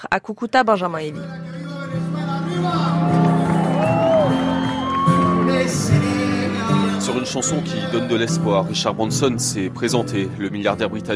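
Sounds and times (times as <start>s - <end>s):
speech: 0.0s - 2.0s, 2.6s - 3.3s, 7.1s - 11.1s
vast concert crowd of hundreds of thousands roaring: 2.2s - 7.6s
scattered whoops and shouts: 2.6s - 5.7s.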